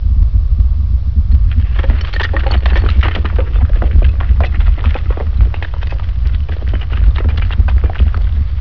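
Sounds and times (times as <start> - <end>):
earthquake rumble: 1.1 - 8.5.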